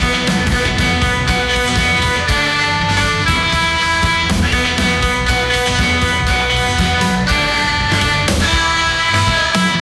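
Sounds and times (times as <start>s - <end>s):
police crime live music: 0.0s - 9.8s.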